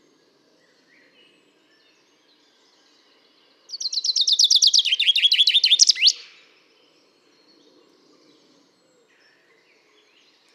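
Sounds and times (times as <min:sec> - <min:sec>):
common chaffinch Fringilla coelebs singing: 0:03.7 - 0:06.3.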